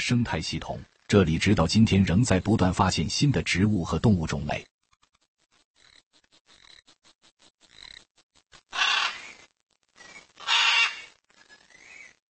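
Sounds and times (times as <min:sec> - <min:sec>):
speech: 0:00.0 - 0:04.7
scarlet macaw clicking and chattering calls: 0:04.3 - 0:12.2
scarlet macaws squawking at a nesting site in Central America: 0:08.7 - 0:09.4, 0:10.1 - 0:11.1.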